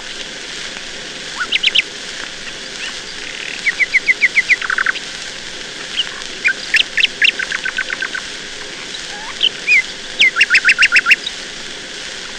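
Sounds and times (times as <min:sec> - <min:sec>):
nightingale song: 0:01.4 - 0:05.1, 0:05.9 - 0:11.4.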